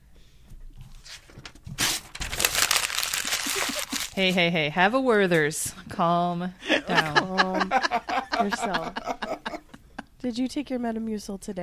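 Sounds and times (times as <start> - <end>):
paper pages rustling and crinkling: 0.9 - 4.4
laughter: 3.2 - 4.2, 6.6 - 10.1
speech: 4.2 - 9.2, 10.2 - 11.6.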